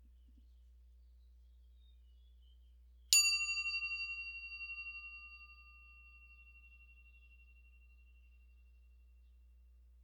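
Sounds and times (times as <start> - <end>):
meditation bell struck, clear metallic chime: 3.1 - 9.3.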